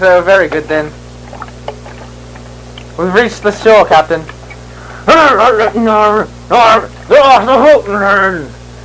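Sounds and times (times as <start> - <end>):
speech: 0.0 - 1.0, 3.0 - 4.4, 5.0 - 8.6
steady low hum of a boat moving through water: 0.0 - 8.0
light splashes and laps of water against a boat: 1.2 - 2.9.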